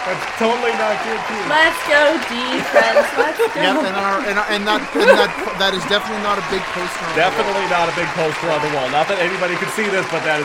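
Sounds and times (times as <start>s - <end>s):
canned prerecorded crowd cheering: 0.0s - 10.4s
speech: 0.0s - 10.4s
laughter: 2.2s - 8.9s.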